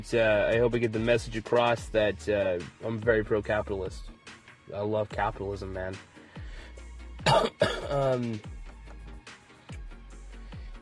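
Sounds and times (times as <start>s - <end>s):
speech: 0.0s - 6.1s, 7.2s - 8.6s
loud cough: 7.2s - 8.4s
raspy throat-clearing: 7.2s - 8.4s.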